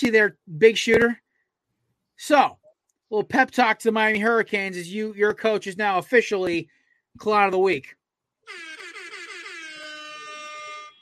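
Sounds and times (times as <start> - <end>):
speech: 0.0 - 1.2, 2.2 - 8.8
brassy horn sound effect blaring: 8.5 - 10.9.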